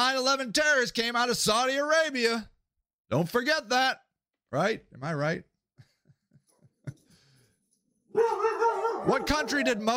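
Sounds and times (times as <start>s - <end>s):
speech: 0.0s - 2.5s, 3.1s - 5.5s, 8.2s - 9.9s
dog barking: 8.1s - 9.8s.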